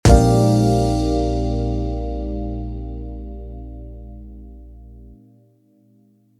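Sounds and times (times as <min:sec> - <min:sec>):
game over music: 0:00.1 - 0:02.1.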